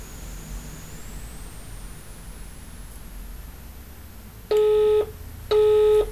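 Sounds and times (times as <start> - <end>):
faint high whine on a phone line: 0.0 - 6.1
phone line hiss: 4.5 - 6.1.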